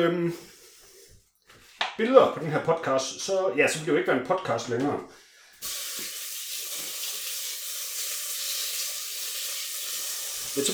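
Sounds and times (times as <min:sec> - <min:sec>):
speech: 0:00.0 - 0:00.6, 0:02.0 - 0:06.1
pork belly sizzling in a pot: 0:05.6 - 0:10.7.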